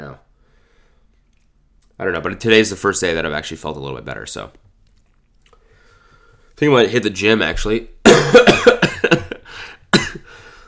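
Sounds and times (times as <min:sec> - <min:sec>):
speech: 0:02.0 - 0:04.7, 0:06.6 - 0:09.2
wheezy breath: 0:05.6 - 0:06.5, 0:09.4 - 0:10.6
sick person coughing heavily: 0:08.0 - 0:10.5.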